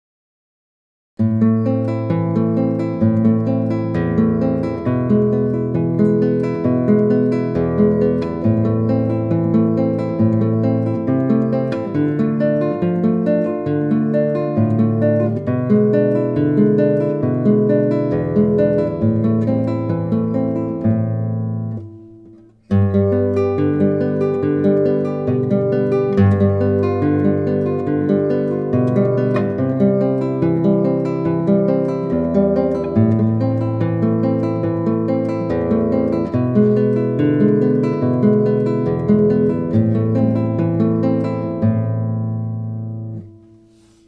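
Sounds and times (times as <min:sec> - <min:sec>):
guitar arpeggio: 0:01.2 - 0:44.0.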